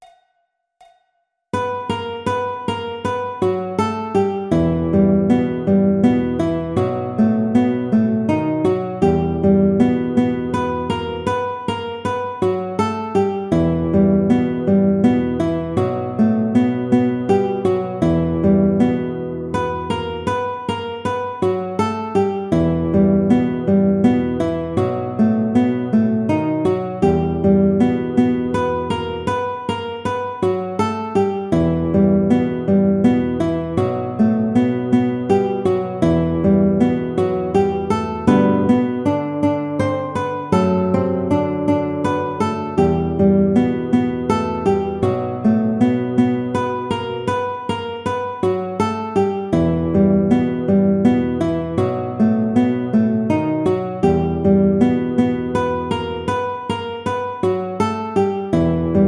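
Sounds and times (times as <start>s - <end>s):
classical guitar piece: 1.5s - 59.0s.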